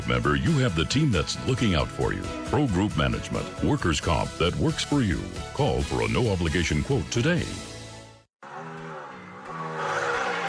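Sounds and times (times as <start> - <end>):
speech: 0.1 - 7.7
car engine revving: 8.4 - 10.4.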